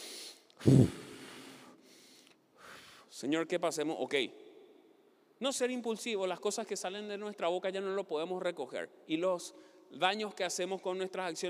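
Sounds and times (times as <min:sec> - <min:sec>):
person blowing out hard in a deep breath: 0:00.0 - 0:01.7
faint hiss: 0:00.0 - 0:03.2
speech: 0:00.6 - 0:01.0, 0:03.2 - 0:04.5, 0:05.4 - 0:11.4.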